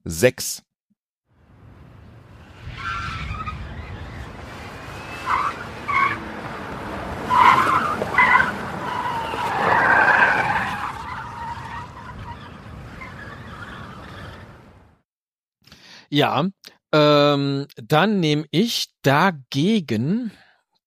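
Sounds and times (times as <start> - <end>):
speech: 0.0 - 0.7, 16.1 - 20.4
tires of a skidding car squealing: 2.4 - 14.7.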